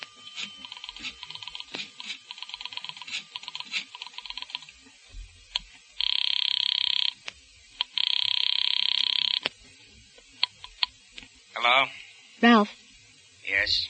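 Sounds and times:
telephone ringing in long steady electronic bursts: 0:00.0 - 0:04.7, 0:06.0 - 0:07.2, 0:07.8 - 0:09.4
speech: 0:11.7 - 0:12.8.

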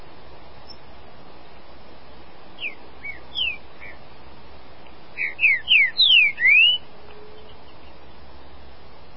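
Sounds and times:
background hiss: 0:00.0 - 0:09.1
green-winged saltator singing: 0:02.6 - 0:04.0, 0:05.2 - 0:07.8.

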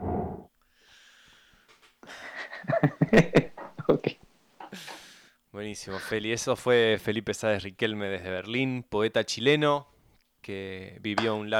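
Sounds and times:
person taking a deep wheezy breath: 0:00.7 - 0:02.7, 0:04.7 - 0:05.3
laughter: 0:02.3 - 0:04.2
speech: 0:02.8 - 0:03.4, 0:05.6 - 0:11.5.

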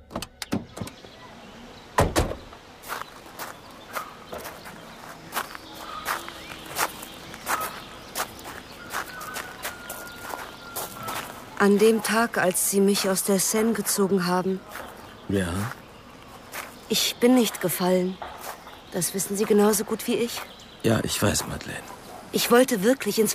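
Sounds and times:
footsteps walking along an avenue lined with large plane trees: 0:02.6 - 0:12.2, 0:13.6 - 0:16.9, 0:18.1 - 0:20.6
speech: 0:11.6 - 0:15.8, 0:16.9 - 0:18.2, 0:18.9 - 0:23.3.

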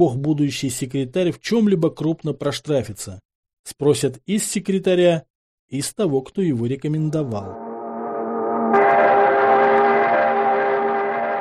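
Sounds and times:
speech: 0:00.0 - 0:07.6
factory horn sounding outside the factory office: 0:07.6 - 0:11.3.

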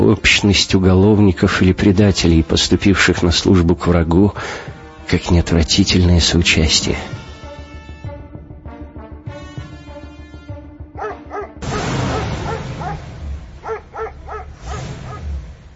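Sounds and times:
speech: 0:00.1 - 0:07.1
several dogs barking: 0:10.9 - 0:15.4
low rumble: 0:11.6 - 0:15.7.

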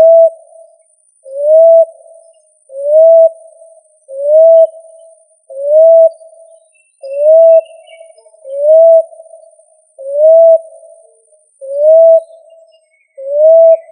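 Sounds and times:
pigeon cooing: 0:00.0 - 0:00.4, 0:01.3 - 0:01.9, 0:02.8 - 0:03.4, 0:04.2 - 0:04.8, 0:05.6 - 0:06.2, 0:07.0 - 0:09.2, 0:10.0 - 0:12.3, 0:13.2 - 0:13.9.

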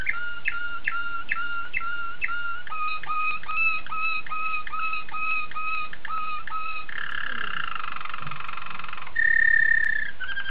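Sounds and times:
oriental magpie-robin whistled song: 0:00.0 - 0:10.4.

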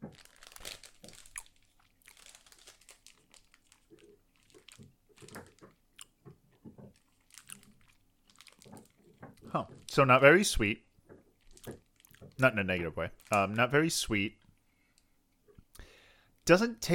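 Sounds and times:
chewing artificial grape-flavoured gummies: 0:00.0 - 0:10.2, 0:11.2 - 0:13.7
speech: 0:09.5 - 0:10.8, 0:12.4 - 0:14.4, 0:16.5 - 0:16.9.

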